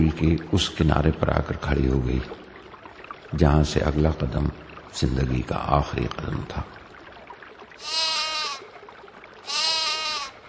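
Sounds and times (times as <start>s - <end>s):
speech: 0.0s - 2.4s, 3.3s - 6.8s, 7.8s - 8.1s
lamb bleating: 7.8s - 8.6s, 9.4s - 10.4s.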